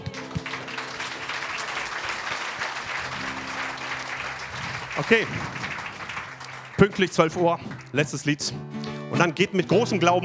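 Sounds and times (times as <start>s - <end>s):
crowd applause at a worship gathering: 0.0s - 8.3s
speech: 5.0s - 5.6s, 6.8s - 10.2s.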